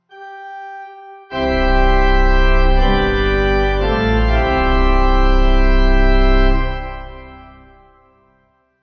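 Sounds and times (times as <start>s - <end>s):
pipe organ playing at a Lutheran morning service: 0.2s - 8.1s.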